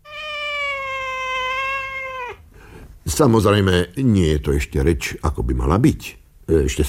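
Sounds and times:
person imitating a cat meow: 0.0s - 2.4s
speech: 3.2s - 6.8s.

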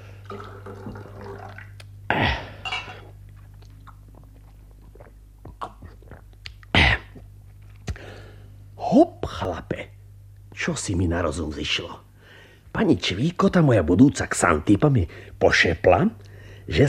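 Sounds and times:
liquid pouring into a glass: 0.2s - 1.8s
speech: 0.3s - 1.1s, 8.9s - 9.6s, 10.6s - 12.1s, 12.8s - 16.8s.

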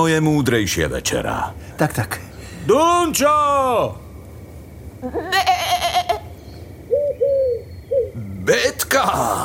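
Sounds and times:
speech: 0.0s - 4.0s, 5.0s - 5.8s, 8.5s - 9.4s
sheep bleating: 5.2s - 6.2s.

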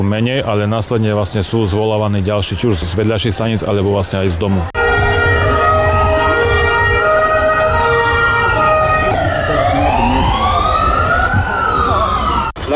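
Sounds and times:
speech: 0.0s - 4.8s
low traffic rumble: 0.0s - 12.7s
fire engine sirens wailing during rescue exercise: 4.8s - 12.7s.

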